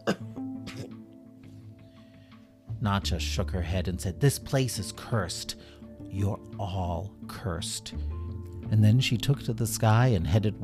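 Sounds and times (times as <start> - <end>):
dry cough: 0.0 - 1.0
speech: 2.8 - 8.1, 8.7 - 10.6.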